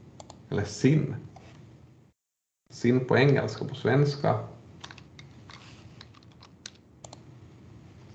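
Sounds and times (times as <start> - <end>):
low hum: 0.0 - 8.1
speech: 0.5 - 1.3, 2.7 - 4.5
typing on a computer keyboard: 4.8 - 7.2.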